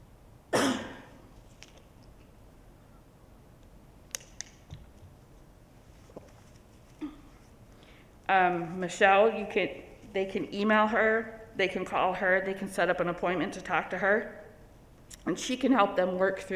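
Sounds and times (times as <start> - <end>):
person coughing: 0.5 - 1.2, 7.0 - 7.4
small rustles: 4.5 - 7.8
speech: 8.3 - 14.4, 15.2 - 16.5.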